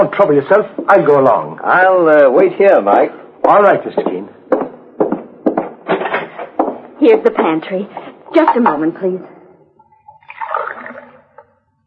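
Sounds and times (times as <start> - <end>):
speech: 0.0 - 4.4, 7.1 - 9.3
tap water running into a glass: 10.1 - 11.5.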